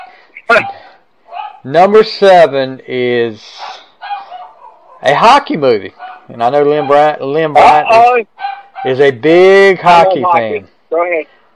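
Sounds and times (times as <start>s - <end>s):
dog barking: 0.0s - 1.7s, 3.5s - 5.1s, 6.0s - 7.2s, 8.4s - 9.0s
speech: 1.6s - 3.7s, 5.0s - 11.4s.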